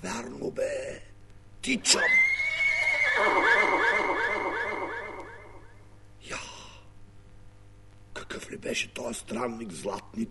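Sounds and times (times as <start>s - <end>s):
speech: 0.0s - 2.4s, 8.7s - 10.3s
white horse whinnying: 1.9s - 5.8s.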